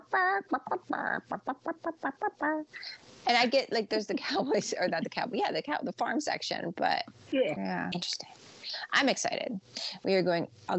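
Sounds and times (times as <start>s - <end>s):
voice imitating chicken clucking: 0.0s - 2.8s
speech: 0.1s - 10.7s.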